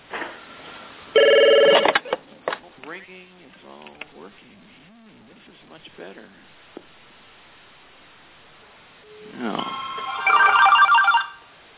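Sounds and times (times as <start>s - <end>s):
phone ringtone with bright electronic tones: 1.2s - 2.0s, 9.1s - 11.5s
speech: 3.0s - 6.8s.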